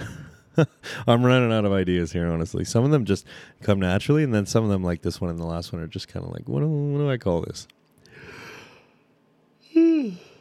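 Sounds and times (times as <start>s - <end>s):
speech: 0.6s - 7.8s
person yawning: 9.7s - 10.3s.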